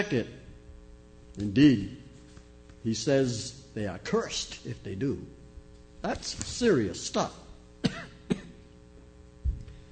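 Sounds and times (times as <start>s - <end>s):
speech: 0.0s - 0.4s, 1.4s - 2.0s, 2.8s - 5.4s, 6.0s - 8.4s
person coughing dry coughs: 7.8s - 8.7s.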